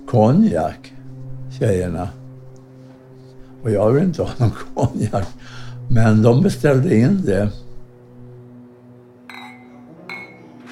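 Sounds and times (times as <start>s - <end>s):
speech: 0.1s - 0.9s, 1.6s - 2.2s, 3.6s - 7.6s
drinking glasses clinking in a toast: 9.3s - 10.6s.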